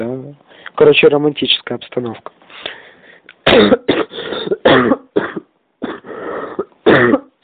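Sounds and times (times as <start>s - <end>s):
speech: 0.0s - 2.8s, 3.6s - 4.0s
person coughing harshly: 3.4s - 7.4s.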